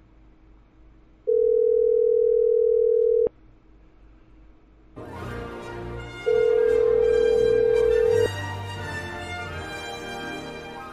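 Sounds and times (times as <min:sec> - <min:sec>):
telephone ringback tone while dialing a call: 0:01.3 - 0:03.3, 0:06.3 - 0:08.3.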